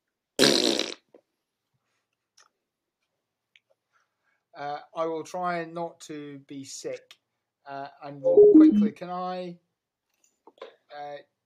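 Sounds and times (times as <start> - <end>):
loud sputtering fart: 0.4 - 1.0
speech: 4.6 - 9.6, 11.0 - 11.3.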